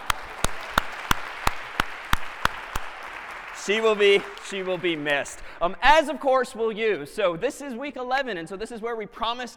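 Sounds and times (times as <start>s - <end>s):
audience applause: 0.0s - 5.4s
sharp evenly spaced claps: 0.0s - 5.4s
speech: 3.7s - 9.5s.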